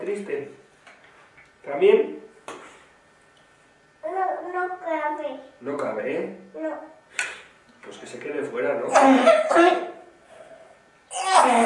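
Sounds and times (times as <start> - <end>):
speech: 0.1 - 0.7, 1.6 - 2.3, 4.5 - 9.9, 11.1 - 11.6
person coughing harshly: 8.9 - 10.0.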